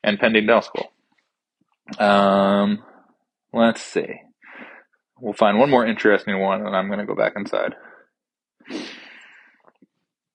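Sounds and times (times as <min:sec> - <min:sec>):
speech: 0:00.0 - 0:01.0, 0:01.9 - 0:02.9, 0:03.5 - 0:04.3, 0:05.2 - 0:07.9
person sniffling from a cold: 0:08.6 - 0:09.4.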